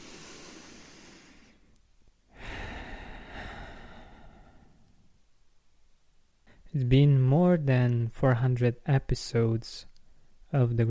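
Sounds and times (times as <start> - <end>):
deep breath in: 0.0 - 1.7, 2.3 - 5.1
speech: 6.7 - 9.9, 10.5 - 10.8.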